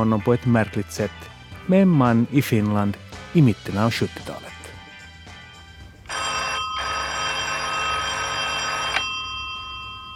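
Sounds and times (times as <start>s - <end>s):
speech: 0.0s - 4.5s
telephone bell ringing: 6.1s - 10.1s.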